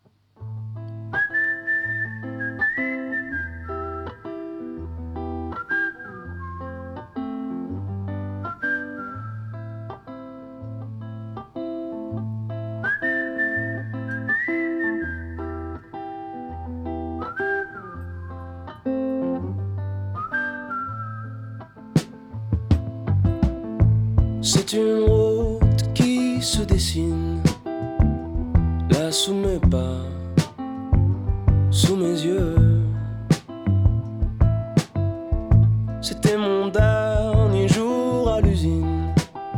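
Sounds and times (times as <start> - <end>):
bright whistled melody in a song: 1.1 - 4.8, 5.4 - 7.8, 8.4 - 10.2, 12.8 - 16.0, 17.1 - 19.3, 20.0 - 22.2
steady rhythmic musical backing with bass notes: 22.0 - 39.5
speech: 24.7 - 25.2, 26.4 - 27.5, 29.1 - 30.2.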